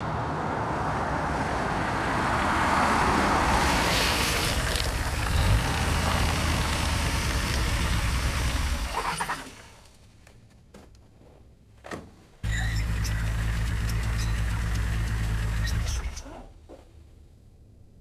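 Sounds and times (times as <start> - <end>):
car pulling in on wet pavement: 0.0 - 9.9, 12.4 - 16.3.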